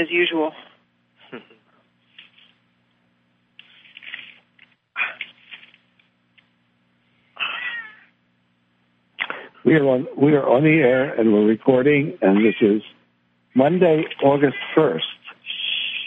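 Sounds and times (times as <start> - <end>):
speech: 0.0 - 0.7, 1.3 - 1.6, 9.6 - 13.0, 13.6 - 15.1
faint steady hum: 0.0 - 16.0
quiet rustles: 1.2 - 2.7, 3.5 - 6.6
cat meowing: 7.4 - 8.0.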